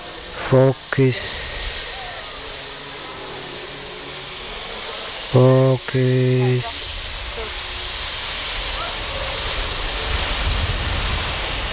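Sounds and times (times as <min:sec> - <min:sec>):
steady hiss: 0:00.0 - 0:11.7
short sung or hummed voice notes: 0:00.3 - 0:03.6, 0:05.3 - 0:06.8
speech: 0:00.5 - 0:01.5, 0:05.3 - 0:06.9.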